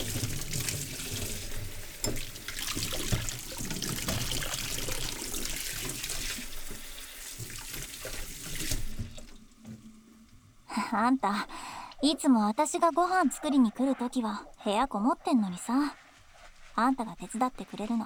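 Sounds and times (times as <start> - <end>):
dishes being washed by hand at home: 0.0 - 10.6
tap water running into a sink at home: 0.0 - 10.6
speech: 11.0 - 16.0, 16.8 - 18.0.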